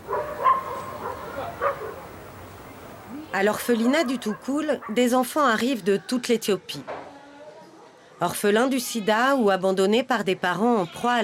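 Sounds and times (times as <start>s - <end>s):
dogs barking: 0.0s - 2.1s, 3.9s - 5.2s
speech: 3.4s - 7.0s, 8.2s - 11.2s.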